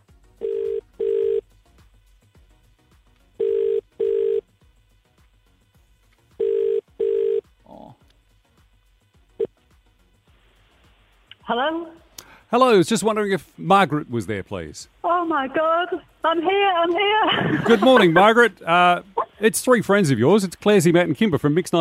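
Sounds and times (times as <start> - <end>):
phone line double-pulse ringing tone: 0.4 - 1.4, 3.4 - 4.5, 6.4 - 7.5
speech: 11.5 - 21.7
laughter: 17.0 - 18.6.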